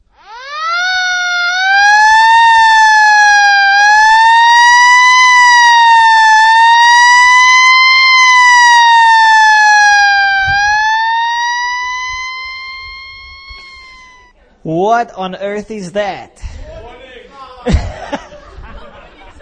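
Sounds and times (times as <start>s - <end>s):
fire engine siren wailing: 0.0s - 14.3s
speech: 14.8s - 16.5s
laughter: 17.6s - 19.4s.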